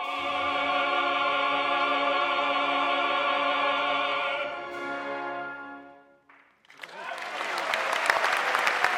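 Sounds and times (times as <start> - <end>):
sustained orchestral chord: 0.0 - 6.2
large audience applauding loudly at a concert: 6.6 - 8.9.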